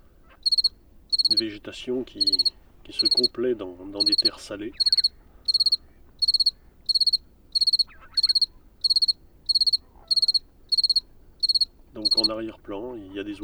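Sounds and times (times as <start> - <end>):
two-spotted cricket singing at night in salt-marsh in the Camargue, France: 0.0 - 13.4
speech: 1.4 - 4.9, 12.3 - 13.4.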